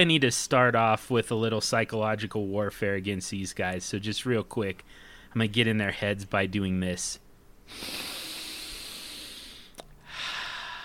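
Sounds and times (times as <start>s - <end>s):
speech: 0.0s - 8.1s
forceful sniffing inhale: 7.7s - 10.8s
loud deliberate breath in through the nose: 7.7s - 10.8s.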